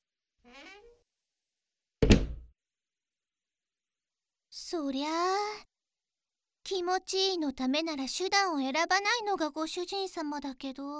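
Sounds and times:
door hinge creaking squeal: 0.5s - 1.0s, 2.0s - 2.4s
solid wooden door thunk: 2.0s - 2.5s
speech: 4.6s - 5.7s, 6.6s - 10.9s.

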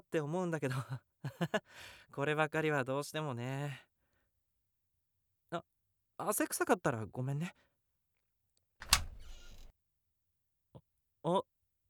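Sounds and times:
speech: 0.1s - 3.9s, 5.5s - 7.7s, 11.2s - 11.5s
door opening with a loud rumbling slide: 8.8s - 9.7s
short click: 8.8s - 9.7s.

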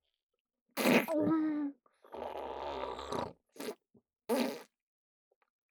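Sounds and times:
wet mouth sucking sounds: 0.8s - 1.1s, 3.1s - 4.7s.

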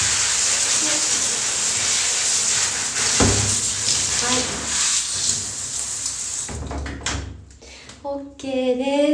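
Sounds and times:
shower water running: 0.0s - 7.3s
knocks and thumps: 3.1s - 3.7s, 6.5s - 7.4s.

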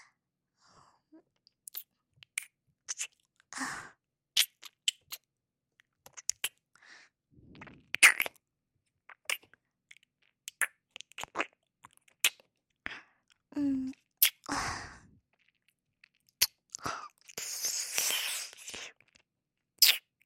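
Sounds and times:
wet mouth clicks from ASMR ear nibbling: 1.7s - 3.4s, 4.4s - 5.3s, 5.8s - 6.6s, 7.6s - 8.4s, 9.1s - 12.5s, 13.3s - 14.5s, 15.4s - 20.1s.

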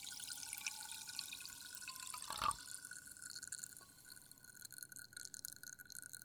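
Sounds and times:
sparkling water poured from one glass into another: 0.0s - 6.2s.

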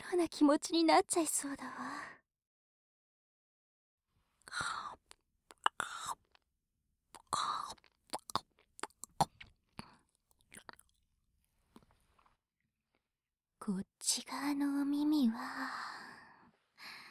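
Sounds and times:
speech: 0.1s - 2.1s, 13.7s - 16.0s
breathy whisper-like mouth sounds: 4.4s - 6.4s, 7.1s - 11.0s
gummy candy chewed softly in sticky squishy bites: 4.5s - 6.4s, 7.2s - 11.0s.

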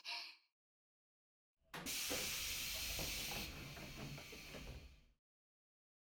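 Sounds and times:
low mechanical clunks of a train door: 1.7s - 5.1s
train door opening with a loud pneumatic hiss: 1.8s - 5.1s.

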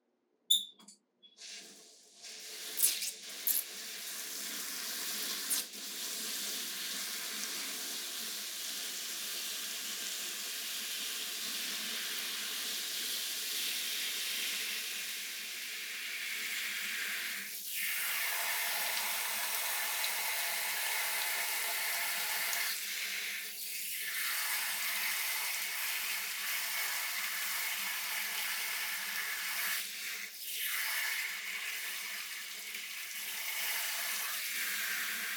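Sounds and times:
shower water running with a broad hissing spray: 1.4s - 35.3s.

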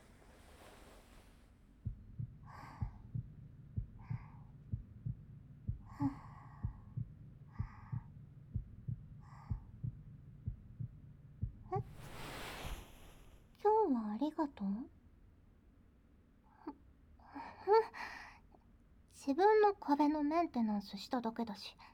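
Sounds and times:
heartbeat heard from the back thumping: 1.8s - 12.1s
speech: 6.0s - 6.2s, 14.4s - 15.0s, 19.3s - 21.9s
soft breathy whooshes: 11.9s - 13.5s.

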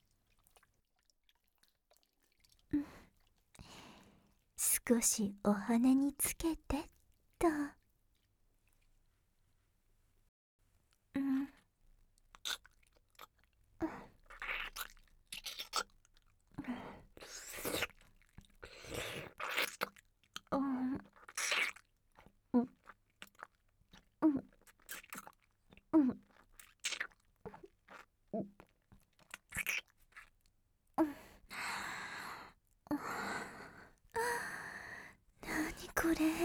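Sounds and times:
chewing and crunching as food is tasted: 0.0s - 4.6s, 6.9s - 9.1s, 11.6s - 30.6s
speech: 4.9s - 7.6s
breaths and sighs: 31.0s - 36.4s.

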